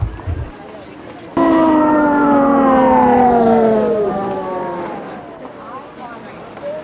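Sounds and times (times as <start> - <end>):
ambulance siren wailing: 1.4 - 5.9
low traffic rumble: 1.4 - 5.9.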